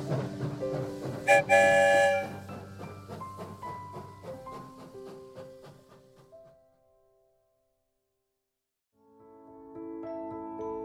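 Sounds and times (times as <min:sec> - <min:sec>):
train sound effect rumbling: 0:00.0 - 0:06.7
train sound effect with horn-like toots: 0:01.3 - 0:02.6
speech: 0:01.4 - 0:01.8.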